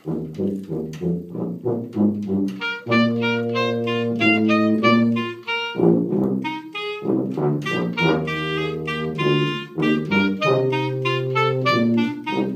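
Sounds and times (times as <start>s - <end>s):
clarinet: 0.0s - 12.5s
tuba: 0.0s - 12.5s.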